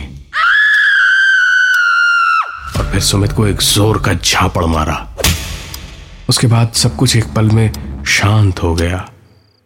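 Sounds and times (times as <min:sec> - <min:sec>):
woman screaming loudly: 0:00.3 - 0:02.7
speech: 0:02.9 - 0:05.4, 0:06.3 - 0:09.1.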